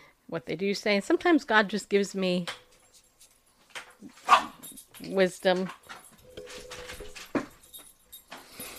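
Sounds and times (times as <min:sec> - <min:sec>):
speech: 0:00.3 - 0:02.6, 0:05.0 - 0:06.0
blind dog yelping after running into something: 0:04.2 - 0:04.6.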